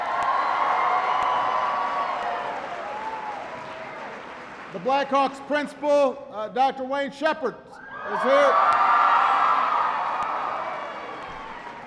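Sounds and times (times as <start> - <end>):
scattered shouts and whoops: 0.0 - 3.8, 7.8 - 11.8
large audience cheering: 0.0 - 5.2, 7.8 - 11.8
large audience clapping: 0.0 - 5.8, 8.7 - 11.8
speech: 4.7 - 9.1.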